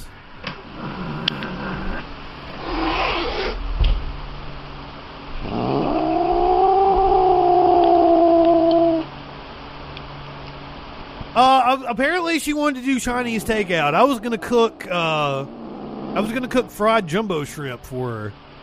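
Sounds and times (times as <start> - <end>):
agitated Bengal cat yowling: 2.6 - 3.6, 5.4 - 9.1, 12.9 - 17.0
speech: 11.7 - 15.6, 16.2 - 18.4.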